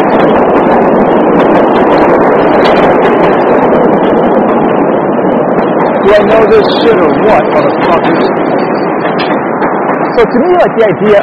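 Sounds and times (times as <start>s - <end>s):
train roaring past: 0.0s - 11.2s
speech: 6.1s - 8.7s, 10.2s - 11.2s.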